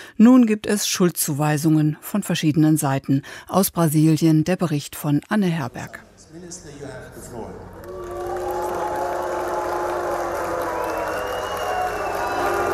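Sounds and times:
speech: 0:00.2 - 0:07.7
dense crowd sustained shrill whistles: 0:07.8 - 0:12.7.

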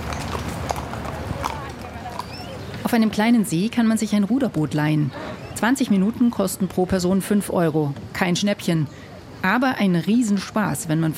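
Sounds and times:
horse hooves clip-clopping in a large park garden: 0:00.0 - 0:04.8
speech: 0:02.9 - 0:11.1.

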